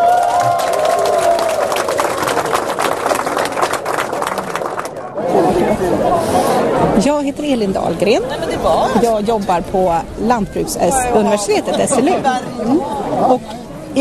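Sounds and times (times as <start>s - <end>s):
large audience applauding the kitchen staff: 0.0s - 5.7s
audience cheering voices: 0.0s - 6.9s
speech: 7.0s - 13.9s.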